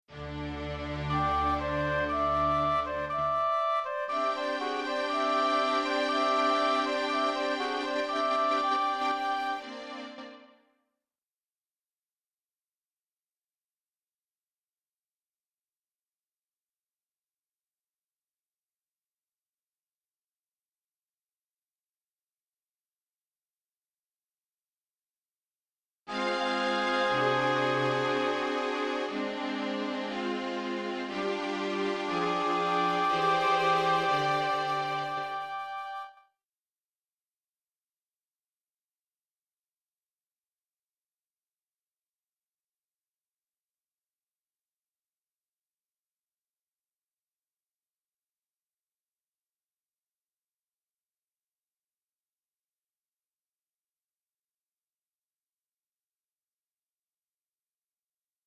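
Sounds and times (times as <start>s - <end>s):
flute: 0.2s - 10.7s, 26.1s - 30.2s, 31.1s - 36.3s
oboe: 1.0s - 9.8s, 32.1s - 36.3s.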